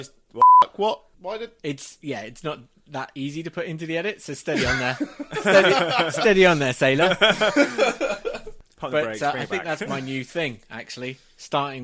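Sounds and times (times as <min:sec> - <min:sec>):
speech: 0:00.0 - 0:11.8
loud steady electronic beep: 0:00.4 - 0:00.7
laughter: 0:04.5 - 0:08.6.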